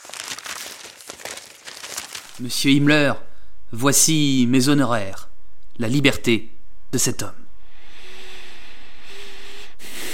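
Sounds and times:
paper being handled, crinkling and rustling: 0.0 - 2.4
speech: 2.4 - 7.4.

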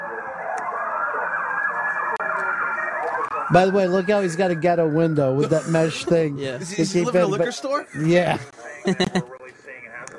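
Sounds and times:
police car sirens wailing during a car chase in L.A.: 0.0 - 7.4
speech: 3.5 - 9.3
laughter: 5.4 - 6.2, 6.9 - 9.4.

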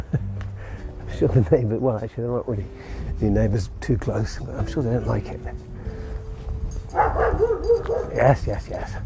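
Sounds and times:
speech: 1.2 - 5.7, 8.1 - 9.0
guard dog barking at a house: 6.9 - 8.2.

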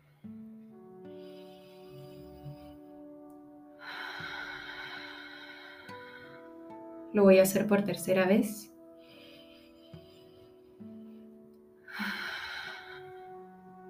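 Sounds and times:
slow deep human breath in a guided breathing exercise: 1.1 - 3.2, 3.8 - 7.0, 8.8 - 13.8
speech: 7.1 - 8.7.

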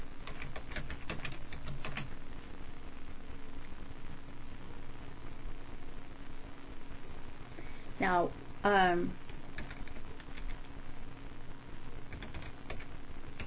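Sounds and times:
steady low hum: 0.0 - 13.4
keys clicking on a keyboard: 0.2 - 2.2, 9.2 - 10.6, 12.1 - 13.4
speech: 8.0 - 9.3.

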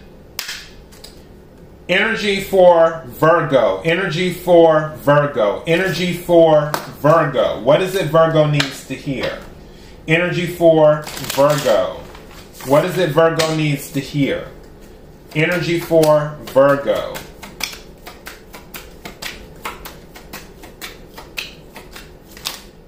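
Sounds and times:
speech: 1.9 - 9.5, 10.1 - 12.0, 12.6 - 14.6, 15.3 - 17.2
oracle card deck shuffling: 11.0 - 13.7, 14.6 - 22.8.

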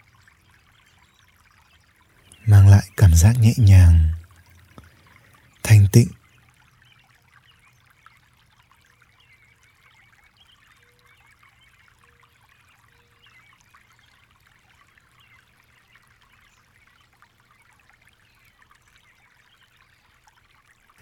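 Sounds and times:
water flowing: 1.3 - 7.3
speech: 2.5 - 4.1, 6.0 - 6.2.

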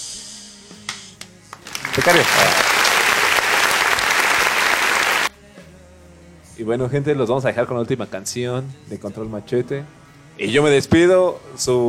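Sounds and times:
applause: 1.5 - 5.3
speech: 2.0 - 2.8, 6.6 - 11.8.

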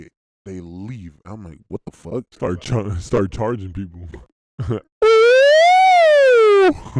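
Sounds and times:
speech: 0.0 - 5.2, 6.6 - 6.9
person imitating a police siren with a sustained wail: 5.0 - 6.8.

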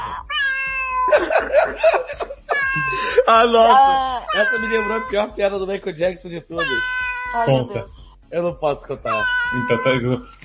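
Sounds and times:
cat yowling: 0.0 - 1.4, 2.5 - 3.0, 3.7 - 5.3, 6.5 - 7.9, 9.1 - 10.3
laughter: 1.1 - 5.7, 9.6 - 10.2
speech: 1.5 - 2.3, 3.2 - 10.4.

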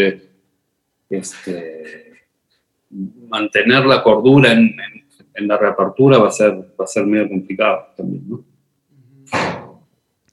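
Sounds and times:
speech: 0.0 - 0.3, 1.1 - 2.2, 2.9 - 8.5
door slamming shut: 9.3 - 9.9.

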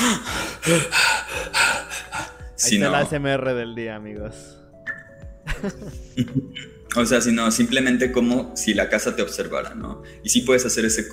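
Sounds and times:
voice imitating heavy agitated breathing: 0.0 - 3.0
speech: 0.6 - 1.1, 2.6 - 4.6, 5.6 - 11.1
laughter: 5.5 - 6.7.

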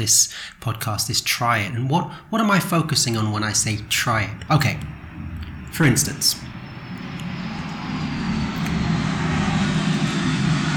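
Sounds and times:
speech: 0.0 - 5.0, 5.7 - 6.6
airplane passing overhead: 2.1 - 10.7.

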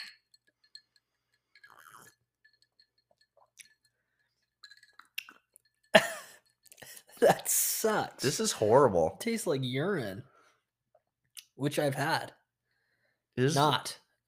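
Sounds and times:
drinking glasses clinking together in a toast: 0.0 - 8.4
speech: 7.2 - 10.3, 11.6 - 12.4, 13.4 - 14.0.

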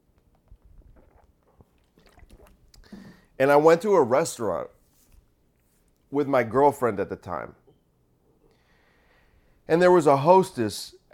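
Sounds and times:
sipping and swallowing water: 0.2 - 3.4
speech: 3.4 - 4.8, 6.1 - 7.6, 9.7 - 11.1.

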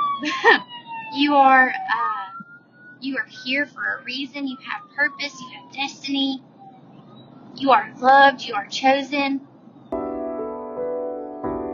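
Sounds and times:
ambulance siren wailing outside: 0.0 - 8.8
speech: 1.2 - 2.2, 3.0 - 6.5, 7.6 - 9.5.

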